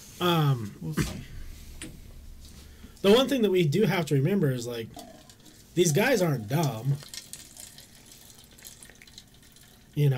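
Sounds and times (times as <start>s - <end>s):
speech: 0.2s - 2.0s, 3.0s - 5.1s, 5.8s - 7.2s, 10.0s - 10.1s
grape juice pouring into a glass: 5.0s - 10.1s.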